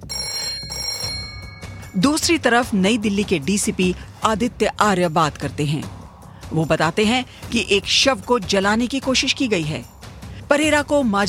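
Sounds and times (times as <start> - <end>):
old-style telephone bell ringing: 0.0 - 2.6
speech: 2.0 - 11.2.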